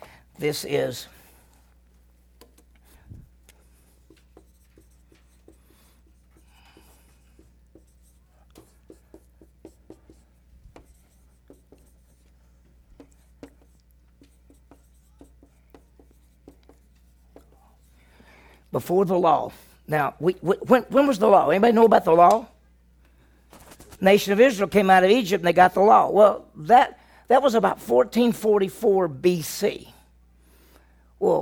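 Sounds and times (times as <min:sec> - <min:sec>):
low steady hum: 0:00.0 - 0:31.4
speech: 0:00.4 - 0:01.2, 0:18.8 - 0:22.5, 0:24.0 - 0:30.0, 0:31.2 - 0:31.4
faint taps and scratchy strokes of drawing on a board during a lesson: 0:04.0 - 0:17.7.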